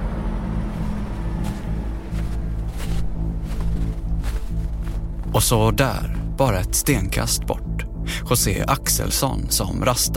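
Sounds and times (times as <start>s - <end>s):
buses idling in a town centre: 0.0s - 5.2s
speech: 5.4s - 7.7s, 8.3s - 10.1s.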